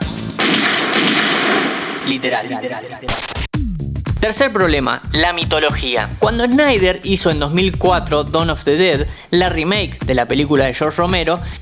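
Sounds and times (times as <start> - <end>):
gunshots: 0.3 - 2.4
speech: 2.1 - 3.4, 4.2 - 11.5.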